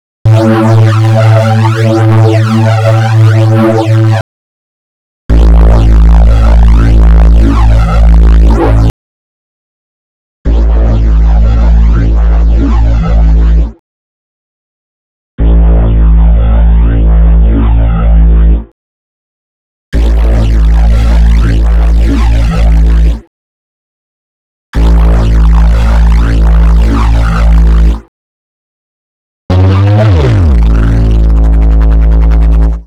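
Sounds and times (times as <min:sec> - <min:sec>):
morphing synth bass: 0:00.3 - 0:04.2, 0:05.3 - 0:08.9, 0:10.5 - 0:13.8, 0:15.4 - 0:18.7, 0:20.0 - 0:23.3, 0:24.8 - 0:28.1, 0:29.5 - 0:32.8.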